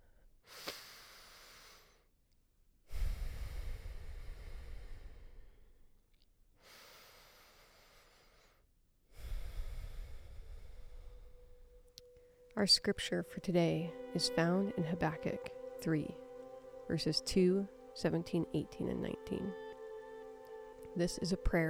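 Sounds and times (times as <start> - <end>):
deep breaths with slow inhale and rushing exhale: 0.4 - 2.1, 2.9 - 5.9, 6.6 - 12.5
speech: 12.6 - 16.2, 16.9 - 19.6, 21.0 - 21.6.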